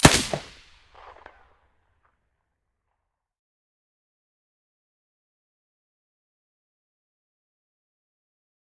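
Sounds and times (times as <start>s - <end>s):
suppressed SA58 rifle shot: 0.0s - 1.3s.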